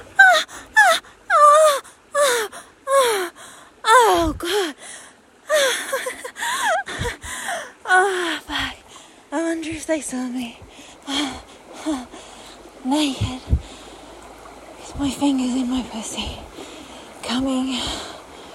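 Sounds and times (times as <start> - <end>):
creek water flowing: 0.0 - 18.5
woman making breathy vocal sounds and moans: 0.1 - 8.9, 10.9 - 12.4.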